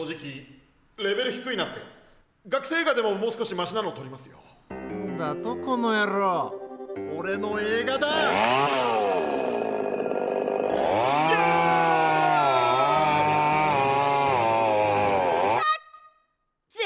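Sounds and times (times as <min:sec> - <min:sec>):
speech: 0:00.0 - 0:09.1
chainsaw roaring and revving: 0:07.8 - 0:15.6.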